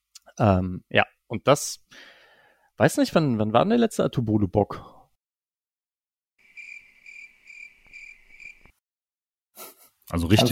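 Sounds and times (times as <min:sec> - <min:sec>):
speech: 0:00.4 - 0:02.1, 0:02.8 - 0:05.0, 0:10.1 - 0:10.5
crickets chirping: 0:06.4 - 0:08.7.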